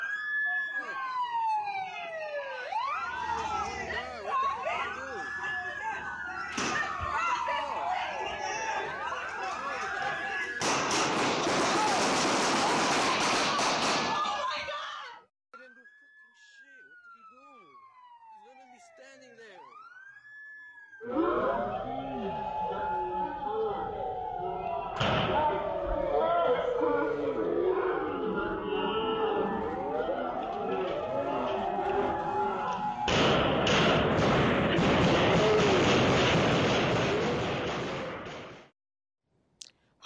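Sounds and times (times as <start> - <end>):
wailing siren: 0.0 - 13.3, 15.5 - 36.2
crowd chatter: 0.5 - 10.6, 21.0 - 33.1
rapid burst of many loud gunshots: 10.6 - 14.4, 33.1 - 38.7.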